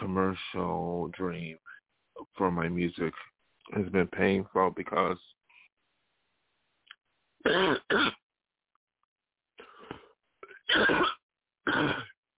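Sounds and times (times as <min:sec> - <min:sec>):
speech: 0:00.2 - 0:05.4, 0:07.4 - 0:08.2, 0:10.7 - 0:12.1
person clearing throat raspily: 0:07.4 - 0:08.2, 0:09.9 - 0:12.2
person coughing: 0:07.5 - 0:08.2, 0:09.9 - 0:12.2.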